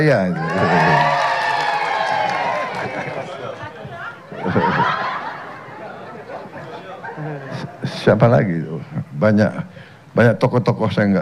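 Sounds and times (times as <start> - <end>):
speech: 0.0 - 1.1, 8.0 - 11.2
large crowd cheering and shouting: 0.0 - 7.3
laughter: 0.4 - 1.2, 2.5 - 7.8.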